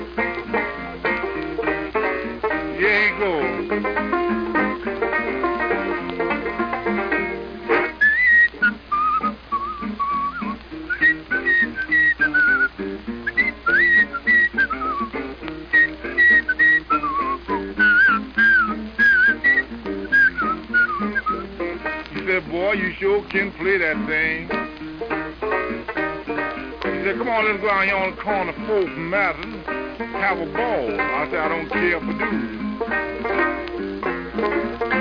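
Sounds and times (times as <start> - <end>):
steady rhythmic musical accompaniment: 0.0 - 34.9
speech: 2.8 - 4.3, 27.4 - 33.5
person whistling a ragtime melody: 8.0 - 15.1, 15.7 - 21.5.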